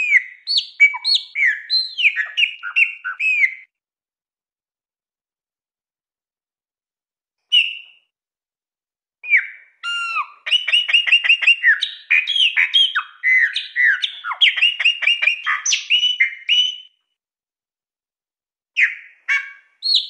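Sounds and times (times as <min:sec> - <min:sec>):
chopi blackbird song: 0:00.0 - 0:03.7, 0:07.5 - 0:08.1, 0:09.2 - 0:17.0, 0:18.8 - 0:20.0.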